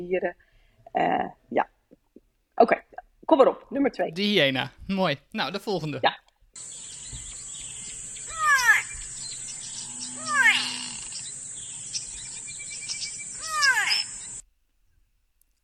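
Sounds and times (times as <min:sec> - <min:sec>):
speech: 0:00.0 - 0:01.7, 0:02.6 - 0:06.8
constant high buzz of insects: 0:06.6 - 0:14.4
grey go-away-bird calling with nasal downward-sliding cries: 0:06.6 - 0:14.4.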